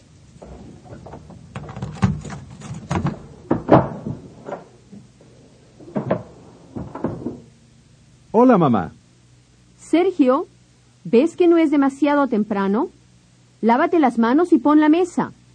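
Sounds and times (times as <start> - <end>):
wooden clunks and rattles of a front door: 0.4 - 5.1, 5.8 - 7.5
front door unlatched and swung open: 0.4 - 7.6
heavier knocks as someone steps inside and handles the door: 0.4 - 7.6
speech: 0.9 - 1.5, 8.4 - 9.0, 9.9 - 13.0, 13.6 - 15.4.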